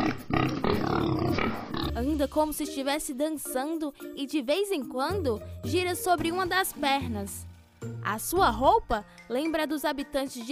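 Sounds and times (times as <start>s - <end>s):
pig grunting and snorting: 0.0s - 2.0s
speech: 2.0s - 10.5s.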